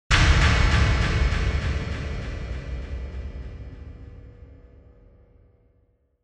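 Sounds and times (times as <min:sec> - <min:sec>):
low delayed impact: 0:00.1 - 0:05.4.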